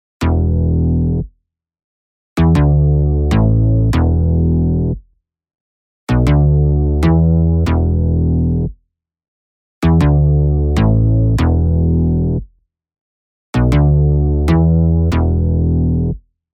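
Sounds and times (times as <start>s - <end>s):
stereoized bass: 0.2s - 1.3s, 2.4s - 5.0s, 6.1s - 8.7s, 9.8s - 12.5s, 13.6s - 16.2s.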